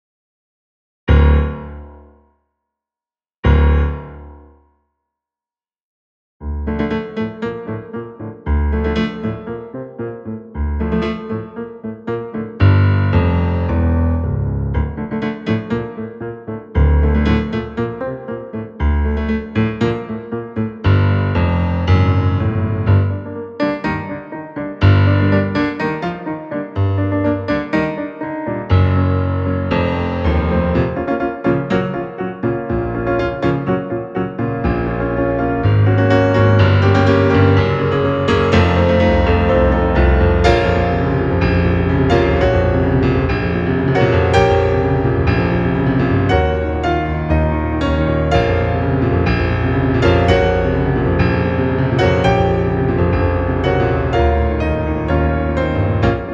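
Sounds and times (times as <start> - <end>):
dark piano music: 1.1 - 2.3, 3.4 - 4.6, 6.4 - 56.3.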